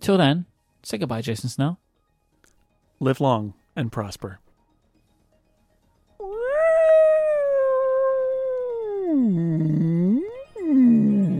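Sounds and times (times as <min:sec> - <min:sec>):
speech: 0:00.0 - 0:01.8, 0:03.0 - 0:04.4, 0:09.2 - 0:09.9
long moaning vocal cry imitating a whale call: 0:06.2 - 0:11.3.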